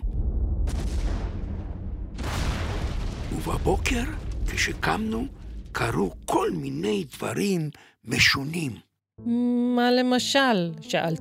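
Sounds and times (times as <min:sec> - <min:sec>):
booming explosions and blasts at night: 0:00.0 - 0:07.2
heavy continuous rumbling at night: 0:00.1 - 0:07.3
speech: 0:03.3 - 0:11.1.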